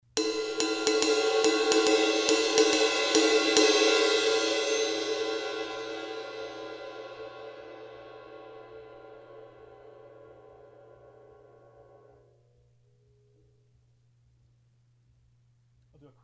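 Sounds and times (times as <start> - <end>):
ride cymbal pattern: 0.1 - 12.2.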